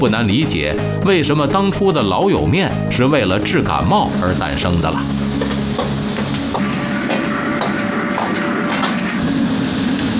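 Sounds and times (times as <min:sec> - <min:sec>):
speech: 0:00.0 - 0:05.6
pickled chillies and blanched crispy intestines stir-fried over high heat: 0:03.8 - 0:10.1
spatula strokes against the wok: 0:05.2 - 0:09.2.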